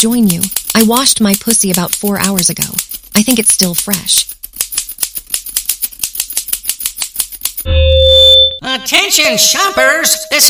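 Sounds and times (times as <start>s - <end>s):
speech: 0.0s - 4.4s, 8.6s - 10.4s
fingers clicking in a steady even rhythm: 0.0s - 7.7s.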